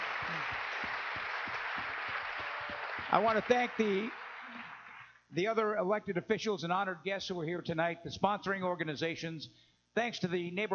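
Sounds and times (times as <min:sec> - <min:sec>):
sharp claps: 0:00.0 - 0:05.0
crowd applause: 0:00.0 - 0:05.1
speech: 0:03.1 - 0:04.2, 0:05.3 - 0:10.7.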